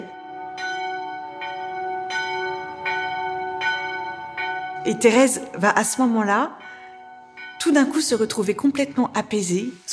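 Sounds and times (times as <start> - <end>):
church bell ringing: 0.0 - 9.9
speech: 4.8 - 6.6, 7.6 - 9.9.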